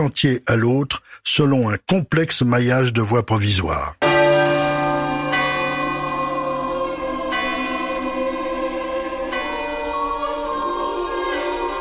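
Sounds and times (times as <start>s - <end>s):
speech: 0.0s - 4.0s
railway chapel car bells ringing at a construction site: 4.0s - 11.7s.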